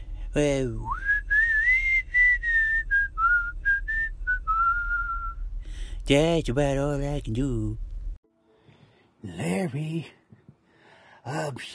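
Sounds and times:
low steady hum: 0:00.0 - 0:11.1
speech: 0:00.4 - 0:01.1, 0:06.1 - 0:07.8, 0:09.2 - 0:10.2, 0:11.2 - 0:11.7
person whistling a short wavering tune: 0:00.8 - 0:05.4.

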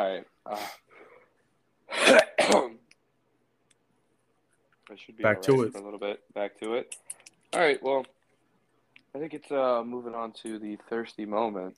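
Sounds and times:
speech: 0:00.0 - 0:00.8, 0:04.9 - 0:08.2, 0:09.2 - 0:11.7
harsh coughs: 0:01.9 - 0:02.8.

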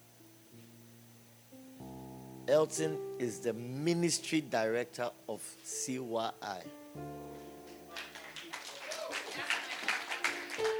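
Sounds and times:
sustained keyboard chords: 0:00.0 - 0:08.5
speech: 0:02.5 - 0:07.2
audience clapping: 0:07.6 - 0:10.7.

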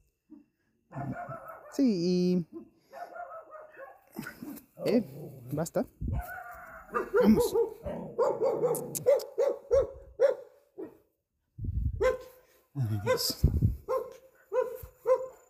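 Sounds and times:
dog barking: 0:00.3 - 0:01.9, 0:02.5 - 0:04.6, 0:06.1 - 0:11.1, 0:12.0 - 0:15.4
speech: 0:01.8 - 0:02.6, 0:04.2 - 0:09.3, 0:12.9 - 0:13.7.

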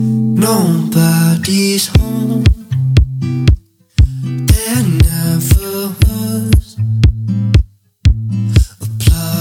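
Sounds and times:
pop song with sung vocals over synth chords and percussion: 0:00.1 - 0:03.1, 0:04.0 - 0:07.2, 0:08.5 - 0:09.3
speech: 0:00.4 - 0:02.6.

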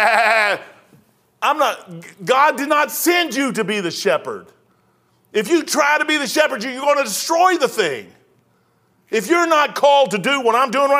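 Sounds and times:
speech: 0:00.0 - 0:00.7, 0:01.4 - 0:04.6, 0:05.3 - 0:08.2, 0:09.1 - 0:10.9
person mimicking a sheep bleating: 0:00.0 - 0:00.8.

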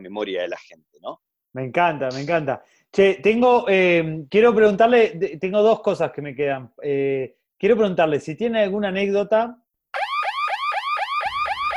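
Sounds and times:
speech: 0:00.0 - 0:09.6
loud electronic alarm whooping in rising sweeps: 0:10.0 - 0:11.7.

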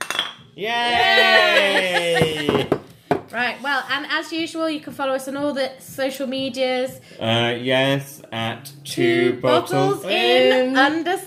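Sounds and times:
glass bottles clinking in a toast: 0:00.0 - 0:00.5
speech: 0:00.6 - 0:11.2
laughter: 0:00.9 - 0:02.8.

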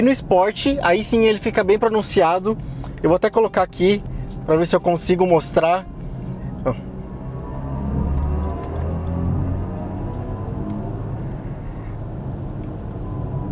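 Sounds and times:
speech: 0:00.0 - 0:05.9, 0:06.6 - 0:06.9
synthetic engine roar from car speakers inside a car cabin: 0:06.6 - 0:12.1.

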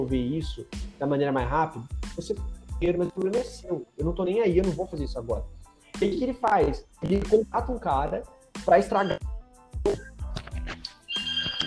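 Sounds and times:
speech: 0:00.0 - 0:09.3
home telephone ringing in electronic bursts with a warbling tone: 0:11.1 - 0:11.6.

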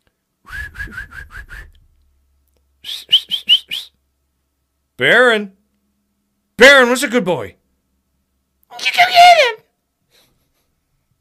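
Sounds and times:
person attempting to whistle short chirpy notes: 0:00.5 - 0:01.8, 0:02.8 - 0:04.0
speech: 0:05.0 - 0:05.6, 0:06.6 - 0:07.6.

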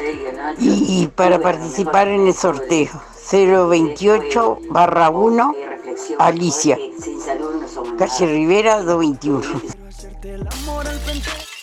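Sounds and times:
speech: 0:00.3 - 0:11.5
glass shattering: 0:10.5 - 0:11.6.

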